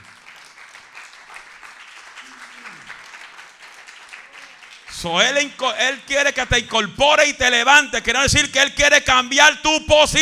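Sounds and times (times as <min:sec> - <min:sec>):
audience clapping: 0:00.0 - 0:06.9
speech: 0:05.0 - 0:10.2.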